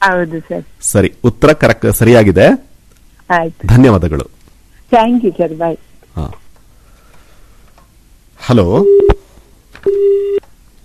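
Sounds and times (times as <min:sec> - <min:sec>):
speech: 0:00.0 - 0:02.7, 0:03.3 - 0:04.3, 0:04.9 - 0:06.4, 0:08.4 - 0:09.2, 0:09.8 - 0:10.5
telephone busy tone after a call is disconnected: 0:08.8 - 0:09.2, 0:09.8 - 0:10.4.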